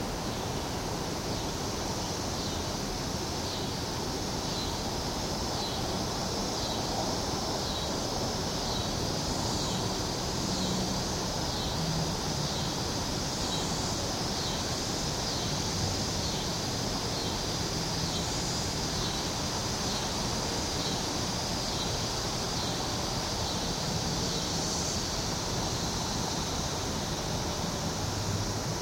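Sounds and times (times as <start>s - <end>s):
17-year periodical cicada chorus buzzing: 0.0s - 28.8s.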